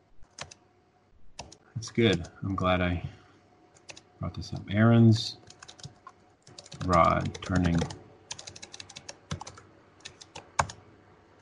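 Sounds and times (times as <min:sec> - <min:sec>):
typing on a computer keyboard: 0:00.2 - 0:00.6, 0:01.4 - 0:02.4, 0:03.8 - 0:04.1, 0:05.4 - 0:10.8
speech: 0:01.8 - 0:03.2, 0:04.2 - 0:05.4, 0:06.8 - 0:08.0.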